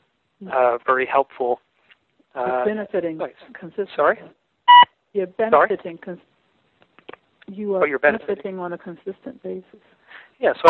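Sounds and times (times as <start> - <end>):
speech: 0.4 - 1.7, 2.3 - 4.4, 5.2 - 6.3, 7.5 - 10.6
short electronic phone beep: 4.7 - 4.9.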